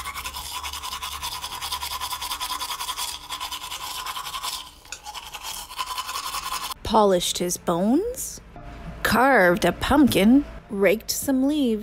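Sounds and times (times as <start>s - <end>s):
toothbrush scrubbing teeth: 0.0s - 6.8s
speech: 6.9s - 8.2s, 9.1s - 11.8s.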